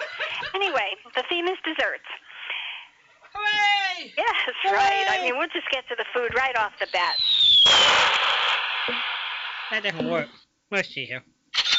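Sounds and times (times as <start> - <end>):
laughter: 0.0 - 0.9
speech: 0.5 - 2.2, 3.4 - 8.2, 8.8 - 9.1, 9.7 - 11.3
thin descending fireworks whistle: 6.9 - 9.9
loud fireworks bang: 7.3 - 9.9.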